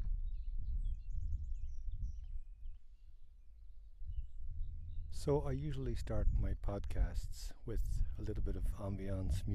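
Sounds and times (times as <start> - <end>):
faint wild birds chirping in a floodplain in Vermont: 0.0 - 6.7
speech: 5.2 - 9.5.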